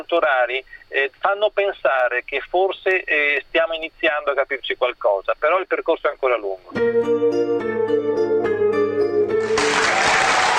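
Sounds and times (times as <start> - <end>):
speech: 0.0 - 7.6
sustained tonal music: 6.8 - 9.8
applause from an audience of physicists: 9.4 - 10.5.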